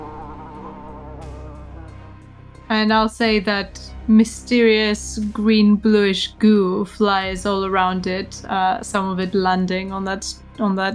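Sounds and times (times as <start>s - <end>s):
insect buzzing: 0.0s - 2.6s
speech: 2.7s - 10.9s.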